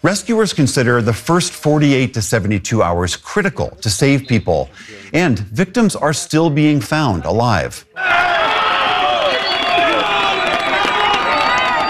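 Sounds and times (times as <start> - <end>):
speech: 0.0 - 8.3
dense crowd cheering and shouting outdoors: 7.9 - 11.8
scattered clapping: 9.0 - 11.8.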